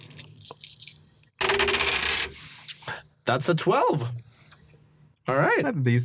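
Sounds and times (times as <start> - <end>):
three dice rattling in a hand: 0.0 - 2.3
speech: 3.3 - 4.3, 5.3 - 6.0.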